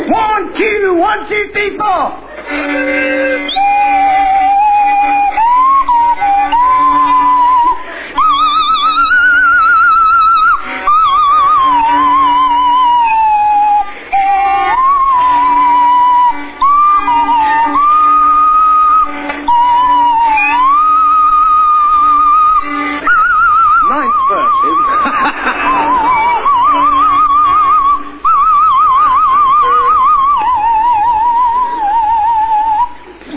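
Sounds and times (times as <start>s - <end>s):
speech: 0.1s - 3.7s
violin pizzicato plucked notes: 2.4s - 24.9s, 29.1s - 32.1s
swanee whistle sliding through a wavering tune: 3.2s - 25.1s, 25.8s - 33.0s
laughter: 24.4s - 27.0s.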